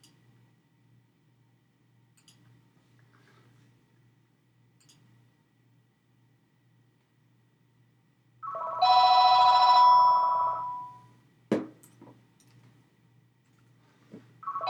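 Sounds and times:
telephone ringing with a bright electronic trill: 8.4 - 11.0, 14.4 - 14.6.

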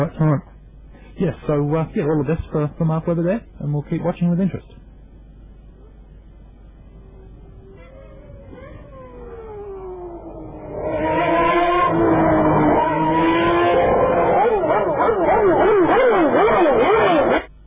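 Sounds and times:
speech: 0.0 - 0.5, 1.2 - 4.8
Ferrari Formula 1 car engine screaming: 7.7 - 17.5.

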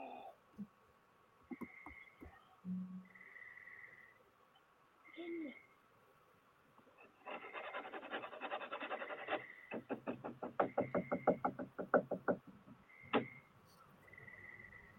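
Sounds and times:
thin high chirping tones: 1.6 - 4.2
scraping bursts: 7.0 - 11.5
sharp knocks: 9.7 - 13.4.

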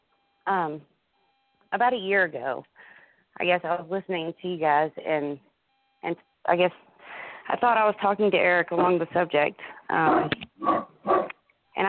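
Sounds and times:
speech: 0.5 - 0.9, 1.7 - 6.9, 7.5 - 10.8
dog barking: 10.1 - 11.3.

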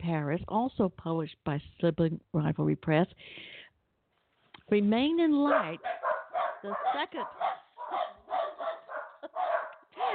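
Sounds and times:
speech: 0.0 - 3.6, 4.7 - 8.1
dog barking: 5.4 - 10.1.

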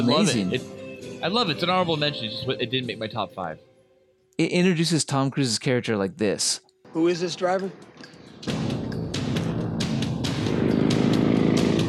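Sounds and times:
speech: 0.0 - 3.7, 4.4 - 8.8
Harley motorcycle engine crackling bursts: 9.4 - 11.8.

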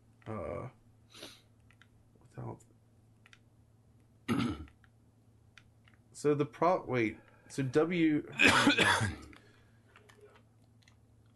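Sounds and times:
speech: 0.3 - 1.3, 6.2 - 9.2
rough throat clearing: 4.3 - 4.7, 8.4 - 9.3
coughing: 4.3 - 4.8, 8.3 - 9.3.

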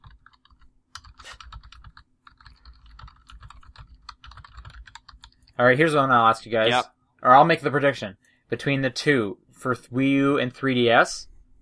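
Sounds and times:
typing on a computer keyboard: 0.0 - 5.6
speech: 5.6 - 11.3.

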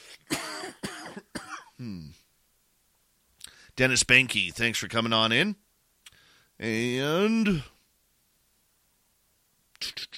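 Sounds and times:
person coughing: 0.0 - 2.2
voiced throat-clearing rasp: 0.0 - 2.2
speech: 3.8 - 5.6, 6.6 - 7.7.

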